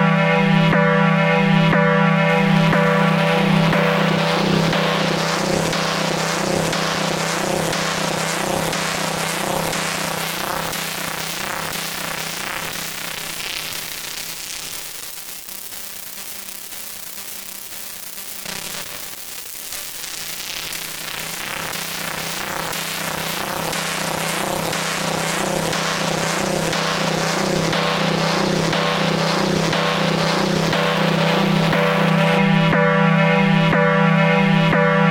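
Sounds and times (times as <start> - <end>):
pulse width effect: 0.2 - 35.0.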